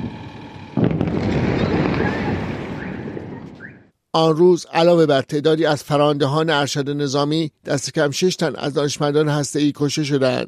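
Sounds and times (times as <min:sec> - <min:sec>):
bomb explosions: 0:00.0 - 0:03.9
speech: 0:04.2 - 0:10.4.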